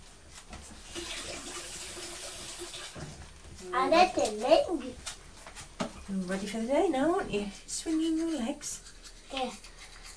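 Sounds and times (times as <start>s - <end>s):
water running from a tap for rinsing after tooth brushing: 0.8s - 3.3s
speech: 3.7s - 5.0s, 6.1s - 9.7s.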